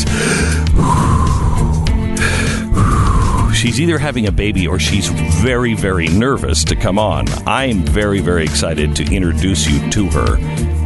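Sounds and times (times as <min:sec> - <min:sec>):
person hyperventilating with heavy rapid panting: 0:00.0 - 0:03.5
speech: 0:03.7 - 0:10.8.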